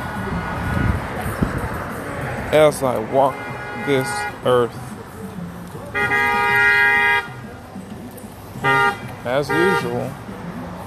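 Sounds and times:
low murmur of voices: 0:00.0 - 0:10.8
car horn honking outside: 0:00.6 - 0:01.3, 0:02.6 - 0:04.8, 0:05.8 - 0:07.6, 0:08.6 - 0:10.1
speech: 0:02.5 - 0:04.9, 0:09.3 - 0:10.2.

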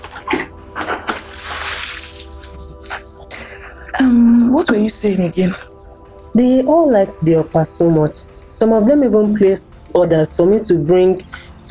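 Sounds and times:
water dripping and sloshing: 0:00.0 - 0:03.3
washing water thrown out and splashing onto the ground: 0:00.3 - 0:03.0
speech: 0:04.0 - 0:05.7, 0:06.4 - 0:11.6.

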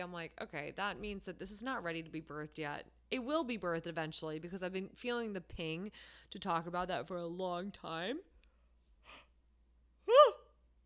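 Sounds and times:
speech: 0:00.0 - 0:08.3
short voiced yawn: 0:10.0 - 0:10.6.

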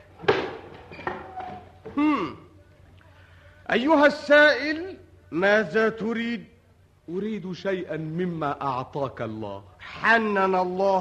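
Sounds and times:
wooden door opening: 0:00.2 - 0:02.0
speech: 0:03.7 - 0:06.5, 0:07.1 - 0:10.9.

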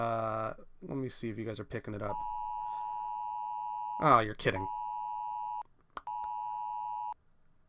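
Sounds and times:
speech: 0:01.0 - 0:02.4, 0:04.0 - 0:04.8
Amber Alert emergency tone from a phone: 0:02.2 - 0:07.2
click: 0:05.9 - 0:06.4.

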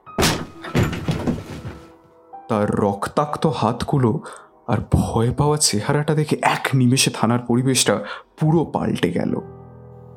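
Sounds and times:
police station door shoved open with force: 0:00.2 - 0:01.8
knocks and rattles: 0:00.2 - 0:02.0
speech: 0:02.5 - 0:09.6.

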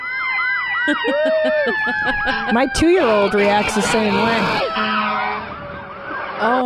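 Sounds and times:
tiller fire truck siren wailing: 0:00.0 - 0:06.6
laughter: 0:00.8 - 0:04.6
speech: 0:00.8 - 0:05.5, 0:06.4 - 0:06.6
short rhythmic blasts of a tiller fire truck: 0:02.3 - 0:06.6.

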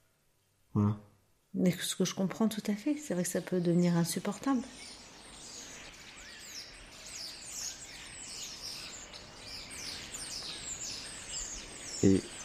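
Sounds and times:
speech: 0:00.8 - 0:05.0, 0:12.0 - 0:12.3
parakeets chirping: 0:03.8 - 0:12.4.

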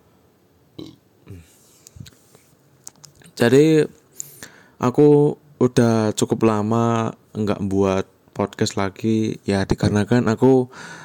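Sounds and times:
low guttural burps after eating: 0:00.8 - 0:01.5
faint clicks and rustling: 0:01.8 - 0:03.4
speech: 0:03.4 - 0:04.0, 0:04.8 - 0:11.0.

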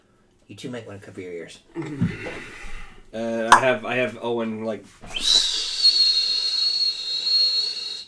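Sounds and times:
speech: 0:00.5 - 0:05.4
voice imitating a loud shrill whistle in a forest: 0:05.1 - 0:08.0.

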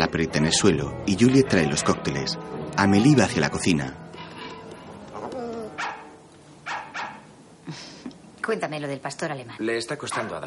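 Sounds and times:
speech: 0:00.1 - 0:04.0, 0:08.5 - 0:10.4
dog giving a whiny yip: 0:05.1 - 0:07.3
dog barking: 0:05.7 - 0:07.3, 0:10.0 - 0:10.4.

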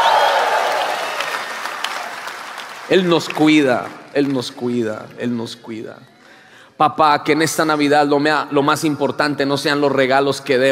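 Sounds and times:
congregation applauding at a church service around Christmas: 0:00.0 - 0:04.8
speech: 0:02.9 - 0:06.1, 0:06.8 - 0:10.7.

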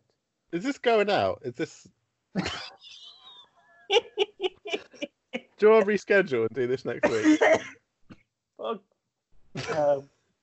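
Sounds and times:
speech: 0:00.5 - 0:03.0, 0:03.9 - 0:04.2, 0:05.6 - 0:07.8, 0:08.6 - 0:08.9, 0:09.6 - 0:10.1
person coughing short rough coughs: 0:02.4 - 0:02.8, 0:06.9 - 0:07.7, 0:09.6 - 0:10.0
laughter: 0:02.4 - 0:05.0, 0:05.6 - 0:07.6, 0:09.6 - 0:10.0.

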